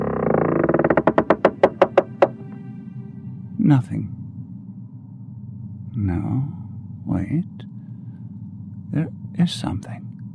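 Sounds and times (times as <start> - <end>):
door creaking open: 0.0 - 2.7
speech: 3.7 - 4.2, 6.0 - 7.7, 8.9 - 10.1.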